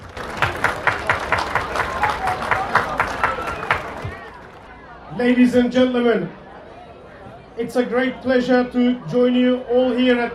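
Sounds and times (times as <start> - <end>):
audience applause at a festival in a park: 0.0 - 4.7
speech: 5.2 - 6.4, 7.6 - 10.3.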